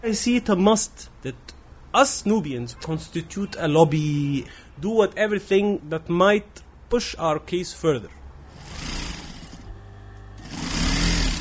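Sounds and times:
speech: 0.0s - 8.2s
sewing machine running: 8.5s - 11.3s.

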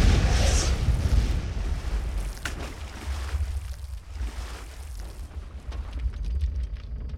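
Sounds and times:
submarine torpedo explosion against a naval vessel hull: 0.0s - 2.4s
churning water from a sinking naval vessel: 0.7s - 6.7s.

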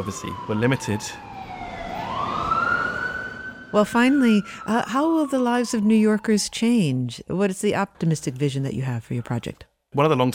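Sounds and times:
speech: 0.0s - 1.3s, 3.7s - 10.3s
constant roar of traffic: 0.0s - 6.8s
emergency vehicle siren rising in pitch: 0.0s - 6.9s.

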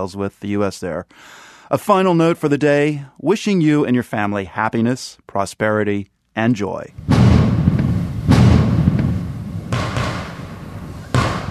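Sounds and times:
speech: 0.0s - 7.1s
fireworks exploding during Diwali celebrations: 6.9s - 11.5s.

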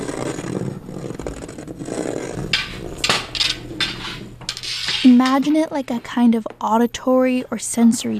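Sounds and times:
handmade jagged and smooth canes scraping along floor, furniture and walls of a gallery: 0.0s - 6.4s
speech: 5.2s - 8.1s.

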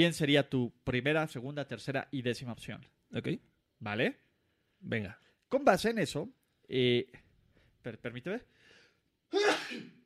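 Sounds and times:
speech: 0.0s - 4.2s, 4.8s - 7.2s, 7.8s - 8.6s, 9.3s - 10.0s
person sneezing sharply: 9.3s - 10.0s.

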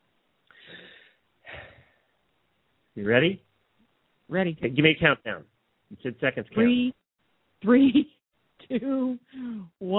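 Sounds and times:
person taking a deep breath before a timed challenge: 0.5s - 2.1s
speech: 3.0s - 3.5s, 4.3s - 7.0s, 7.6s - 9.9s.

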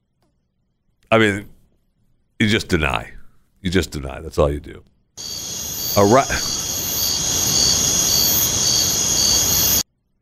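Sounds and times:
speech: 1.1s - 1.5s, 2.4s - 5.3s, 6.0s - 6.6s
crickets chirping: 5.2s - 9.8s.

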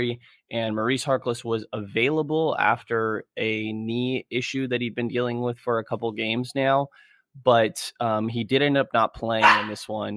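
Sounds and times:
speech: 0.0s - 10.1s
dogs barking: 9.4s - 9.9s.

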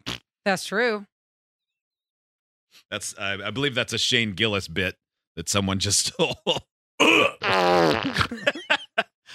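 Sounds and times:
person making buzzing fart noise with the lips: 0.0s - 0.2s, 7.0s - 8.4s
speech: 0.4s - 1.1s, 2.7s - 8.6s
laughter: 5.9s - 6.6s, 8.0s - 9.3s.

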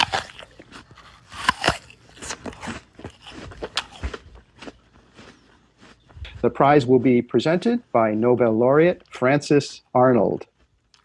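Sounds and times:
crunchy chewing: 0.0s - 7.2s, 10.4s - 11.0s
speech: 6.4s - 10.5s.

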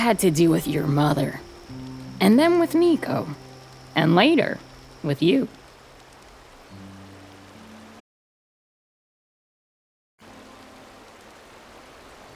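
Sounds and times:
speech: 0.0s - 3.4s, 4.0s - 5.6s
low hum: 0.0s - 8.0s
waterfall inside a cave: 0.0s - 8.0s, 10.2s - 12.3s.

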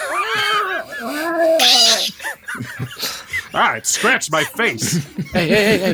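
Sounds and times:
unhappy cat yowling: 0.0s - 2.2s
laughter: 0.0s - 5.9s
speech: 3.6s - 5.9s.

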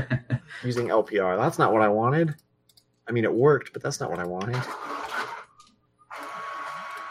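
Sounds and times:
speech: 0.0s - 2.5s, 3.1s - 4.9s
old printer printing a page: 4.1s - 7.0s.

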